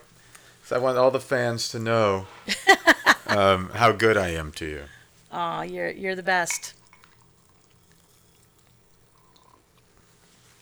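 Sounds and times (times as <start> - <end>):
speech: 0.7 - 6.8
laughter: 2.5 - 4.9
champagne poured from a bottle into a glass: 9.1 - 9.6.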